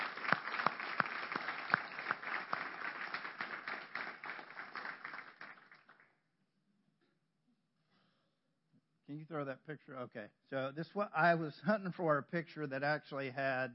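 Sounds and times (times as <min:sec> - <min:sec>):
crowd applauding for military veterans: 0:00.0 - 0:06.1
sharp claps: 0:00.0 - 0:06.2
speech: 0:09.2 - 0:13.7.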